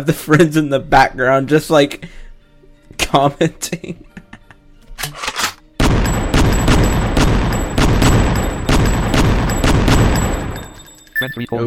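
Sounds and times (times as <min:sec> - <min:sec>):
speech: 0:00.0 - 0:02.2, 0:03.0 - 0:04.1, 0:11.2 - 0:11.6
shotgun gunfire in a video game: 0:05.8 - 0:10.8.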